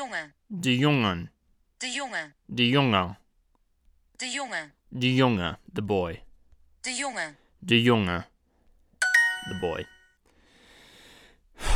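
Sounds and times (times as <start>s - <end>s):
speech: 0.0s - 3.2s, 4.2s - 6.2s, 6.8s - 8.3s, 9.4s - 10.0s
heavy breath like a sigh after exertion: 10.3s - 11.7s.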